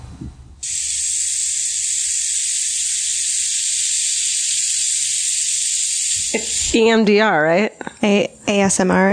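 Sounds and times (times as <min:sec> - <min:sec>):
hot knife sizzling through butter sculpture: 0:00.6 - 0:06.8
speech: 0:06.7 - 0:09.1.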